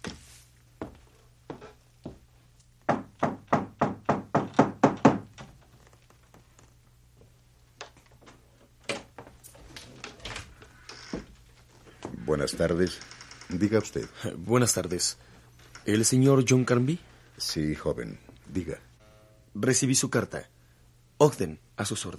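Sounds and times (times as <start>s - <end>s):
knocking on the front door of a large two-story house in Oakland: 2.9s - 5.3s
speech: 12.4s - 18.9s, 19.6s - 20.6s, 21.2s - 22.1s.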